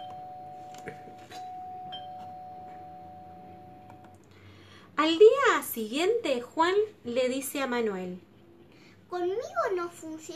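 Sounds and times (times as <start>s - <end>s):
house doorbell ringing with a sustained electronic tone: 0.0s - 4.0s
low hum: 0.0s - 10.3s
speech: 0.8s - 1.4s, 5.0s - 8.3s, 9.1s - 10.3s.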